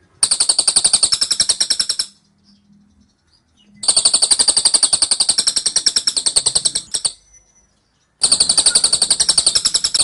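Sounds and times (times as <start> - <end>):
scaly-crowned honeyeater singing in rapid-fire tembakan style: 0.2 - 2.2, 3.8 - 7.2, 8.2 - 10.0.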